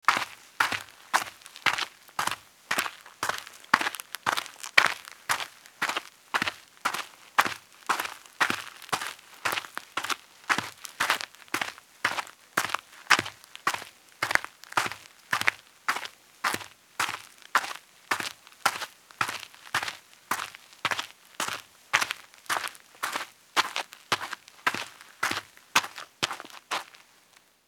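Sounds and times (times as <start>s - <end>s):
sneaker footsteps walking on dirt: 0.1s - 27.0s.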